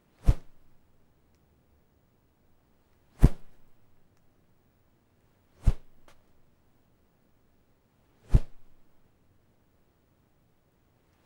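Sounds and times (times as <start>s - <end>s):
single soft rope whoosh: 0.2s - 0.7s, 3.2s - 3.7s, 5.6s - 6.1s, 8.3s - 8.8s.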